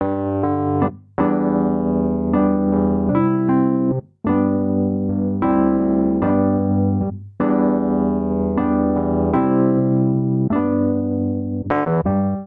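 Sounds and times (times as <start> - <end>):
pop gospel chord progression in G major on electric keyboards: 0.0 - 12.4.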